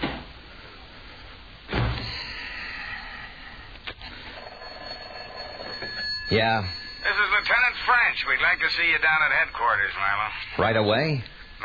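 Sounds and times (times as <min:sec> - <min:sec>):
faint room hum: 0:00.0 - 0:11.6
door swinging shut with a solid thud: 0:01.7 - 0:02.1
speech: 0:06.3 - 0:07.2, 0:07.9 - 0:11.6.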